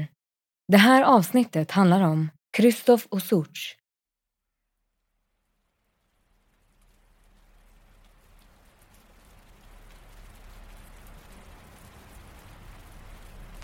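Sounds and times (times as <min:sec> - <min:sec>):
speech: 0:00.7 - 0:03.8
rain pattering on surfaces at night: 0:05.2 - 0:13.6.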